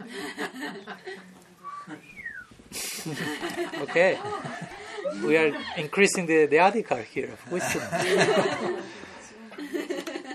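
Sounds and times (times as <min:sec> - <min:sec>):
laughter: 0:00.0 - 0:02.2, 0:02.8 - 0:06.0, 0:07.4 - 0:10.3
person whistling by blowing air: 0:01.6 - 0:02.6
speech: 0:03.0 - 0:09.0.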